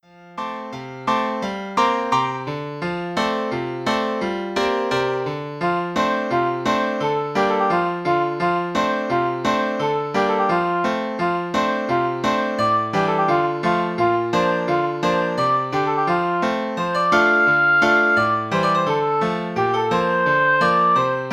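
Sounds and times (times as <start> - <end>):
piano playing a playful piece: 0.0 - 21.3
oboe playing a playful piece: 12.6 - 21.3.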